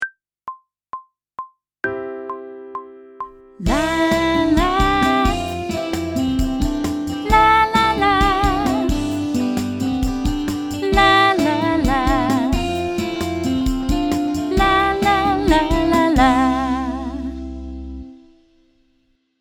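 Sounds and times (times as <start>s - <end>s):
instrumental riffs in C major: 1.8s - 18.8s
person singing: 3.6s - 10.0s, 10.7s - 13.4s, 14.2s - 17.8s.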